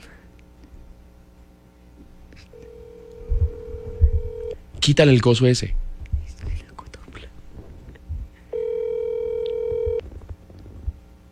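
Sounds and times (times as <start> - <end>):
telephone ringback tone of a rejected call: 2.5 - 4.6, 8.5 - 10.0
speech: 4.9 - 5.8
people whispering and talking quietly: 6.2 - 7.9.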